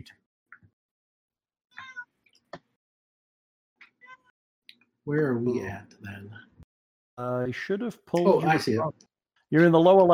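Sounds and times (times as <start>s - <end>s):
cat meowing: 1.8s - 2.1s
speech: 5.0s - 6.5s, 7.2s - 10.1s.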